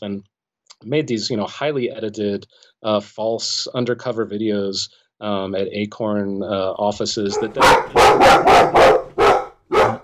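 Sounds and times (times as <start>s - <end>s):
speech: 0.0s - 9.0s
dog barking: 7.3s - 10.0s.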